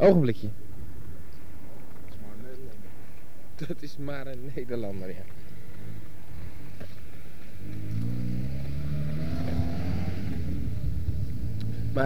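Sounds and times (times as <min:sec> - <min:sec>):
speech: 0:00.0 - 0:00.6, 0:03.6 - 0:05.5
steady low outdoor noise: 0:00.0 - 0:12.0
car engine rumbling as the car drives past: 0:05.7 - 0:12.0.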